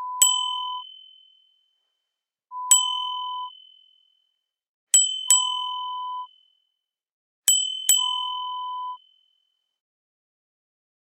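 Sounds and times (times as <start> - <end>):
bicycle bell: 0.2 - 1.8, 2.7 - 4.3, 4.9 - 6.7, 7.5 - 9.5.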